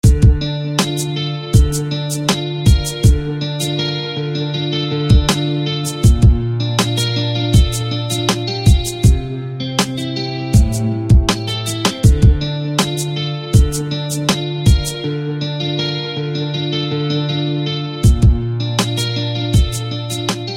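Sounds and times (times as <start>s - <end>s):
guitar picking by hand with a soft pick: 0.0s - 20.5s.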